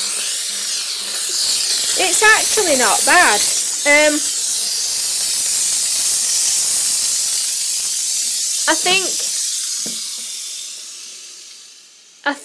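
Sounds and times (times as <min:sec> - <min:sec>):
steam cleaner hissing: 0:00.0 - 0:12.4
speech: 0:02.0 - 0:04.3, 0:08.8 - 0:09.2, 0:12.2 - 0:12.4
voice fragments: 0:02.0 - 0:04.3, 0:08.7 - 0:09.3.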